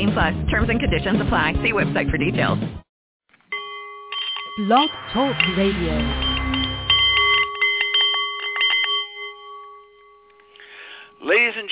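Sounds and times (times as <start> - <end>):
speech: 0.2 - 2.8, 4.6 - 6.3, 11.2 - 11.7
Nepalese meditation bowl ringing: 3.5 - 11.3.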